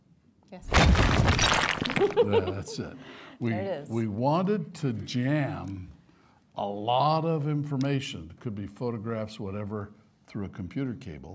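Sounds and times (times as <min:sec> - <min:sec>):
speech: 0:00.5 - 0:06.0, 0:06.6 - 0:11.3
loud crash: 0:00.6 - 0:02.2
rumble of crumbling smashing debris: 0:00.6 - 0:02.2
laughter: 0:02.0 - 0:03.0.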